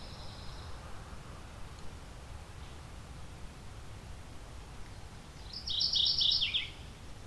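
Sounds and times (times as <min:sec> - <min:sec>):
Mourning Warbler song: 0:00.0 - 0:00.9, 0:04.8 - 0:07.0.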